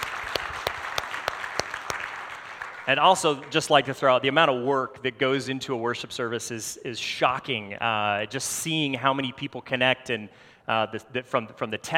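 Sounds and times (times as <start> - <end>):
crowd at a worship service applauding a band: 0.0 - 3.9
speech: 2.9 - 11.9.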